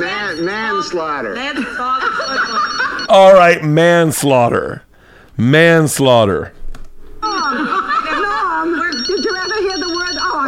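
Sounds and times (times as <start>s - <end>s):
telephone ringing with a bright warbling tone: 0.0s - 3.6s, 7.2s - 10.4s
speech: 0.4s - 6.6s
people chuckling: 1.6s - 3.1s, 7.2s - 9.4s.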